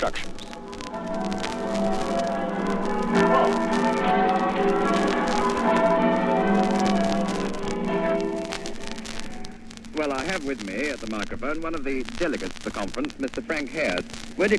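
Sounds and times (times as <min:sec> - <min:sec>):
speech: 0:00.0 - 0:01.4, 0:10.0 - 0:14.5
church bells pealing inside a bell tower ringing chamber: 0:00.1 - 0:10.2.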